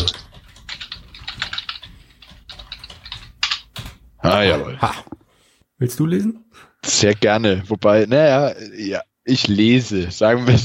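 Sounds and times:
brisk typing of a text command on a computer keyboard: 0.0 - 4.0
speech: 4.2 - 5.1, 5.8 - 10.6.

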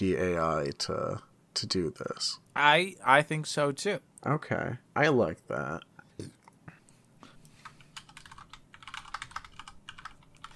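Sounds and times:
speech: 0.0 - 6.4
typing on a computer keyboard with plastic keys: 7.6 - 10.5.

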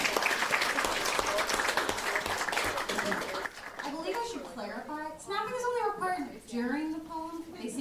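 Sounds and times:
room full of people applauding: 0.0 - 4.5
voices including children's talking: 2.9 - 7.7.

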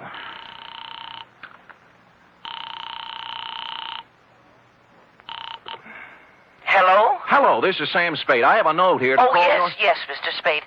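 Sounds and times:
telephone line ringing through the earpiece: 0.2 - 1.6, 2.4 - 4.2, 5.2 - 5.8
speech: 7.4 - 10.6.

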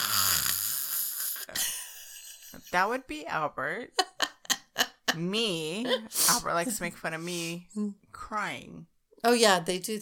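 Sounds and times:
person imitating heavy drowsy breathing of someone dozing off: 0.0 - 1.6
speech: 2.7 - 4.0, 4.8 - 10.0.

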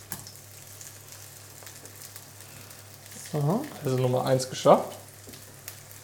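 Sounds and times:
burger patties sizzling in a frying pan: 0.0 - 6.0
speech: 3.3 - 5.0.

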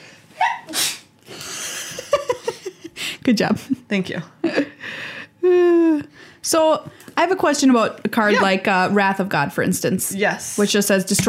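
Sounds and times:
person sneezing: 0.4 - 1.1
speech: 3.2 - 4.6, 6.5 - 11.2.

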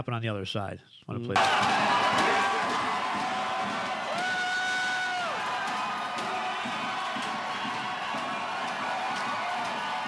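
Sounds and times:
speech: 0.0 - 3.4
large dense crowd roaring and cheering indoors: 1.4 - 10.0
people shouting and whooping: 1.4 - 10.0.

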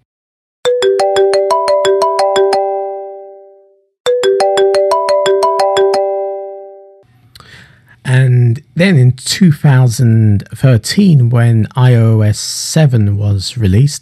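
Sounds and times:
phone ringtone, marimba-like melody: 0.6 - 7.0
speech: 8.8 - 14.0.

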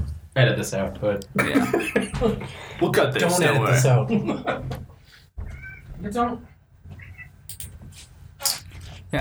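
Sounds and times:
speech: 0.4 - 4.9, 6.0 - 6.5
laughter: 1.4 - 2.5, 3.7 - 4.8
cat meowing while being moved: 5.5 - 5.9.

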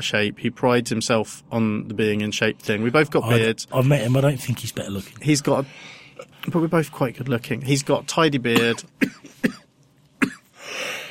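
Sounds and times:
speech: 0.0 - 9.6
person coughing: 8.5 - 11.1
raspy breathy wheeze: 10.5 - 11.1.

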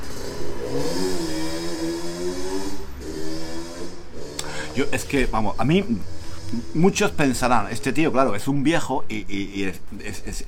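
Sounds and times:
motorcycle engine revving as it passes: 0.0 - 8.2
speech: 4.8 - 10.4.

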